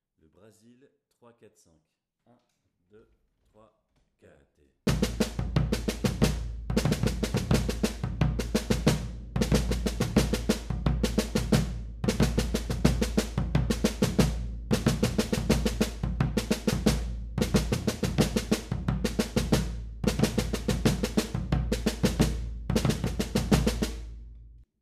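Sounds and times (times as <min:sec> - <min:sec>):
Brazilian batucada percussion: 0:04.9 - 0:24.0.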